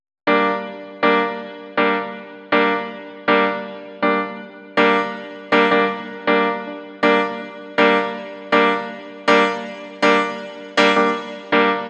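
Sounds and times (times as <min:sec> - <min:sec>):
roots reggae piano: 0:00.3 - 0:11.8.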